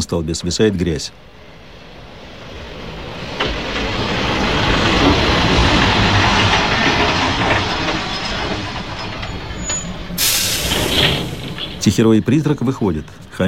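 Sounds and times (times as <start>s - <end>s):
speech: 0.0s - 1.4s, 11.8s - 13.4s
train pulling up at a platform at night: 0.0s - 13.4s
sharp high hiss of air: 10.2s - 11.8s.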